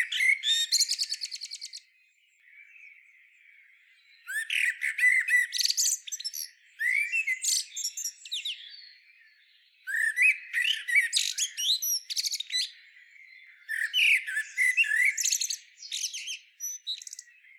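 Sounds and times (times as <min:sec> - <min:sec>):
common blackbird song, Turdus merula: 0:00.0 - 0:17.5.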